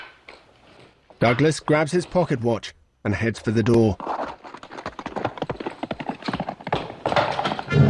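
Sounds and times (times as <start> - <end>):
speech: 1.2 - 4.1
horse galloping at night across open plains: 3.3 - 7.7.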